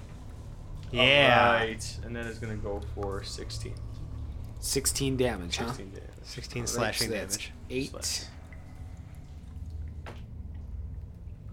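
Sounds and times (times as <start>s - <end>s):
faint quiet trickle of liquid: 0.0s - 11.5s
single clear water drip plopping: 0.0s - 11.5s
steady low rumble of hum: 0.0s - 11.5s
speech: 0.9s - 4.0s, 4.6s - 8.4s.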